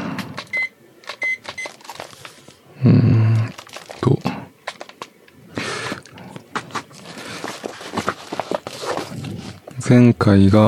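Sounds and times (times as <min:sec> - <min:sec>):
digital timer high electronic beeps: 0:00.5 - 0:01.5
speech: 0:02.8 - 0:03.1, 0:09.9 - 0:10.6.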